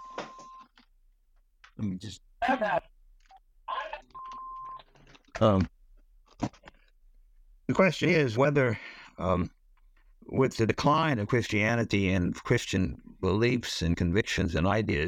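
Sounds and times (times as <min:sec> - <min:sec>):
phone ringing with two short electronic tones: 0:00.0 - 0:00.7, 0:04.1 - 0:04.8
speech: 0:01.8 - 0:02.8, 0:05.4 - 0:05.7, 0:07.7 - 0:09.6, 0:10.4 - 0:15.0.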